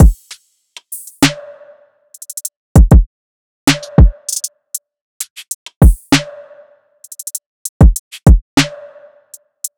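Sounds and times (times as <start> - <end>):
side drum loop: 0.0 - 1.4, 2.2 - 3.1, 3.7 - 4.5, 5.2 - 6.3, 7.1 - 8.8.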